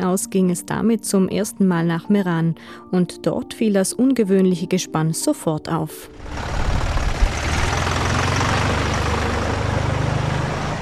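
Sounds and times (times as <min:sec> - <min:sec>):
speech: 0:00.0 - 0:06.6
heavy tractor engine idling and chugging: 0:06.2 - 0:10.8.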